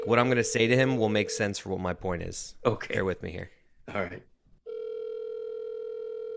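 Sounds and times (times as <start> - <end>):
speech: 0.1 - 4.3
phone line ringing tone on a call to a friend: 4.6 - 6.3.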